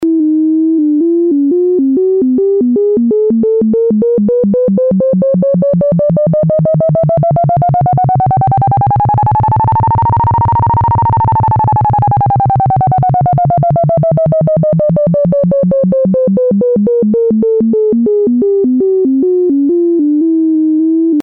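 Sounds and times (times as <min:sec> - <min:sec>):
square wave synth: 0:00.0 - 0:21.2.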